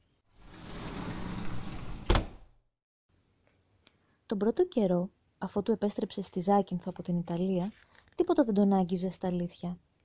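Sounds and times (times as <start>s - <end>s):
door sweeping shut with a rising whoosh and solid thud: 0.5s - 2.5s
speech: 4.3s - 9.9s.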